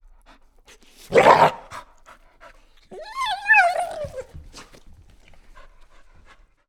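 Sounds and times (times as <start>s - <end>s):
dog whimpering indoors: 2.9s - 4.8s.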